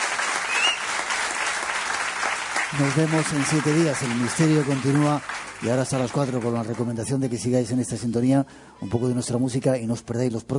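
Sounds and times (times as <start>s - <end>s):
audience applause at the close of a live event: 0.0s - 7.5s
speech: 2.7s - 10.5s.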